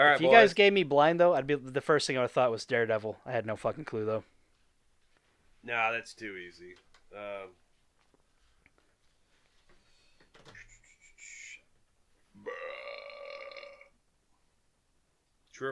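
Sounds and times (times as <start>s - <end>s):
speech: 0.0s - 4.4s, 5.6s - 7.6s
croaking burps and drawn-out belch: 12.3s - 14.0s.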